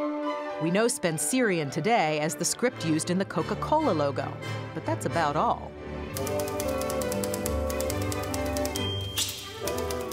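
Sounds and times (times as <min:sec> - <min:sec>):
low sustained music: 0:00.0 - 0:10.1
speech: 0:00.6 - 0:06.5
typewriter keys clacking: 0:06.1 - 0:10.1.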